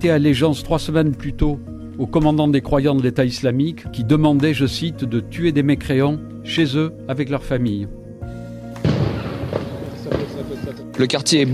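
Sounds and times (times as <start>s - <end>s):
speech: 0.0s - 8.0s, 11.0s - 11.5s
explosion in a cordoned-off neighbourhood: 8.8s - 10.7s.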